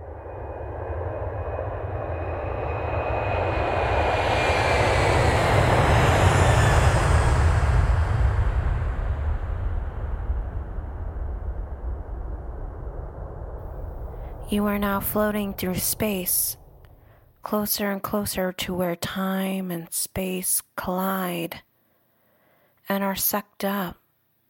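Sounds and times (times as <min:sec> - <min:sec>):
high whine of jet engine sliding downward: 0:00.0 - 0:17.3
jet engine roaring: 0:00.0 - 0:17.3
speech: 0:14.5 - 0:16.6, 0:17.4 - 0:21.7, 0:22.9 - 0:24.0.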